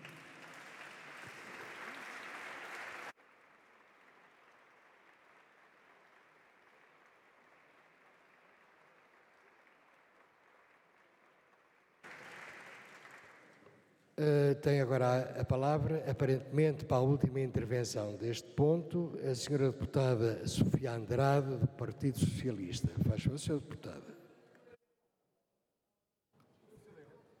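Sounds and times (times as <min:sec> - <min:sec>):
large crowd clapping in a parliament chamber: 0:00.0 - 0:14.0
speech: 0:14.2 - 0:24.1.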